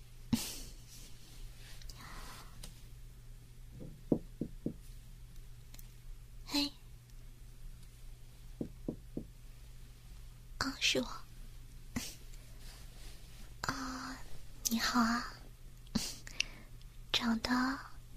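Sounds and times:
low steady hum: 0.0s - 18.1s
quiet breathing: 0.7s - 2.9s, 12.0s - 18.0s
soft rustling: 0.8s - 3.0s, 12.2s - 13.6s
knocking on a hotel room door: 3.8s - 4.8s, 8.6s - 9.4s.

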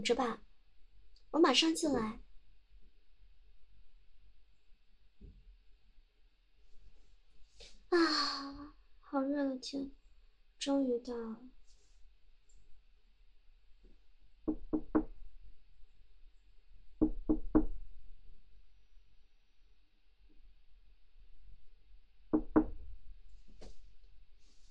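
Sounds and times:
speech: 0.0s - 0.4s, 1.3s - 2.2s, 7.9s - 10.0s, 10.6s - 11.5s
sibling knocking on a brother's door: 14.5s - 15.1s, 17.0s - 17.8s, 22.3s - 22.8s.

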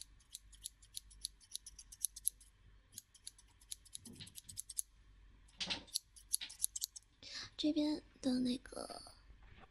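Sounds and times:
scissors snipping hair during a haircut: 0.0s - 4.8s, 5.9s - 7.0s
speech: 7.6s - 9.2s.

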